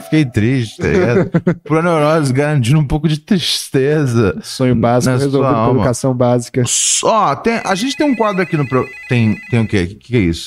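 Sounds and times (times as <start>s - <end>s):
speech: 0.1s - 10.4s
laughter: 0.8s - 1.8s
telephone ringtone: 7.6s - 9.9s.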